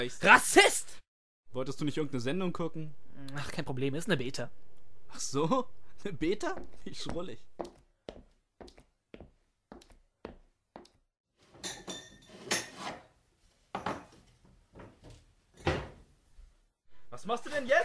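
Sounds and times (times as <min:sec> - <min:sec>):
speech: 0:00.0 - 0:00.9, 0:01.5 - 0:07.8, 0:17.2 - 0:17.8
sharp glassy clinks while preparing a drink: 0:11.6 - 0:12.7.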